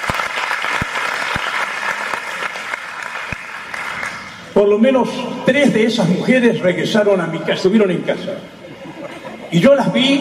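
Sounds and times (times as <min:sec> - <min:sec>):
audience applause: 0:00.0 - 0:04.4
speech: 0:04.6 - 0:08.6, 0:09.5 - 0:10.1
laughter: 0:08.5 - 0:10.1.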